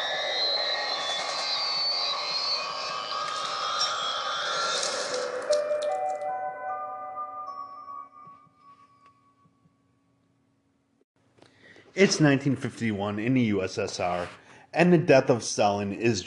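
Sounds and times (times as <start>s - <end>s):
airplane engine drone inside cabin: 0.0s - 6.9s
speech: 12.0s - 16.2s.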